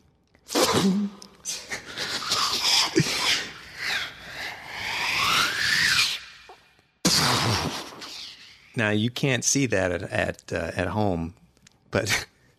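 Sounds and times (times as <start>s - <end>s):
voice imitating a mortar shell hitting: 0.4s - 8.8s
speech: 0.8s - 1.6s, 8.8s - 12.3s.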